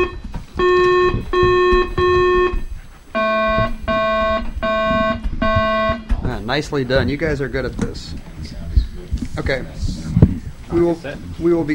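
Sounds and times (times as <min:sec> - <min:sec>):
electronic quiz buzzer tones as contestants test their buzzers: 0:00.0 - 0:06.2
speech: 0:06.6 - 0:08.3, 0:09.4 - 0:10.0, 0:10.7 - 0:11.7.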